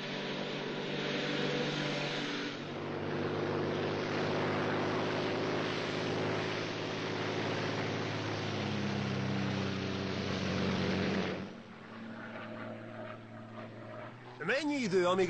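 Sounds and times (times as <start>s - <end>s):
Royal Air Force aircraft engine droning in flight: 0.0s - 15.2s
speech: 14.5s - 15.2s.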